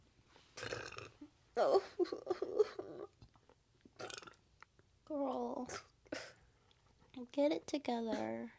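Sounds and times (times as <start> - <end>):
longer gurgling belch breaking into rough pulses: 0.6 - 1.1, 4.0 - 4.4
croaky burp: 0.6 - 1.2, 4.0 - 4.4
speech: 1.6 - 3.2, 5.1 - 5.9, 7.2 - 8.5.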